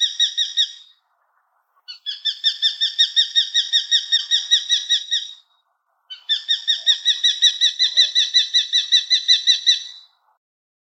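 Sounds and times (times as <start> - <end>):
common kestrel giving kee-kee-kee calls: 0.0 - 1.0, 1.9 - 5.5, 6.1 - 10.1.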